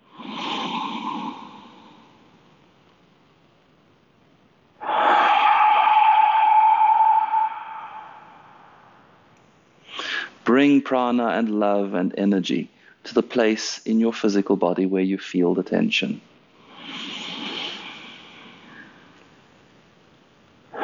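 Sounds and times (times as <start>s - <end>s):
slow deep breathing: 0.0s - 2.5s, 4.8s - 9.1s, 16.6s - 19.6s
speech: 10.6s - 16.3s.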